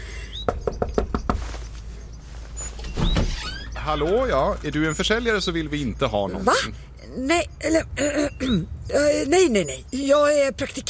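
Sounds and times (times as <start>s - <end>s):
chirp: 0.0s - 6.4s, 7.1s - 10.5s
speech: 0.5s - 0.7s, 3.9s - 10.8s
firm knocks on a door: 0.5s - 1.5s.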